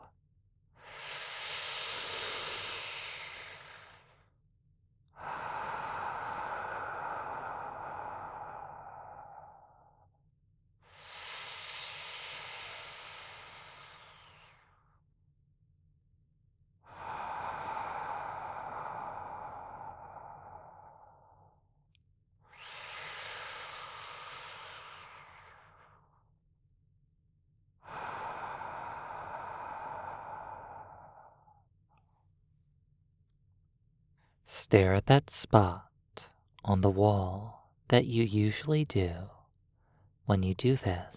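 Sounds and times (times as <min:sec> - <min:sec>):
slow deep breathing in and out: 0:00.8 - 0:04.3, 0:05.2 - 0:10.1, 0:10.8 - 0:14.8, 0:16.9 - 0:21.6, 0:22.5 - 0:26.2, 0:27.8 - 0:31.7
speech: 0:34.7 - 0:35.9, 0:36.7 - 0:39.4, 0:40.3 - 0:41.1.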